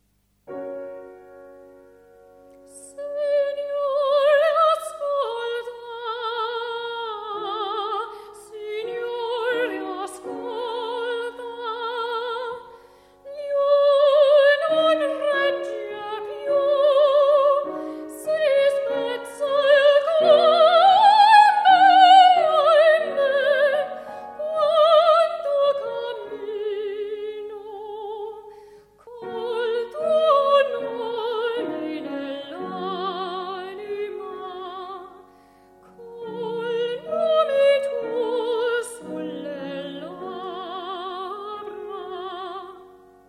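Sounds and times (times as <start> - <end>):
opera singer singing: 2.7 - 43.0.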